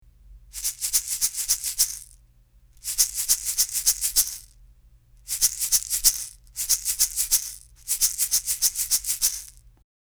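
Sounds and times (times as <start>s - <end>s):
shaker: 0.1s - 2.2s, 2.8s - 9.8s.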